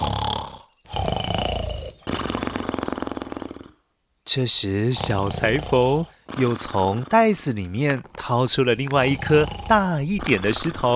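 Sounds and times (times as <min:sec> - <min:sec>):
rhythmic rasping snoring from two sleeping giants: 0:00.0 - 0:03.8, 0:07.7 - 0:10.9
speech: 0:04.3 - 0:10.9.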